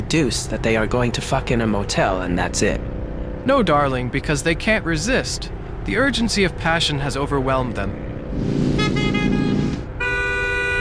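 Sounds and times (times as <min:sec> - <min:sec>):
speech: 0:00.1 - 0:08.8
low rumble: 0:00.2 - 0:10.0
car horn honking: 0:08.6 - 0:10.8.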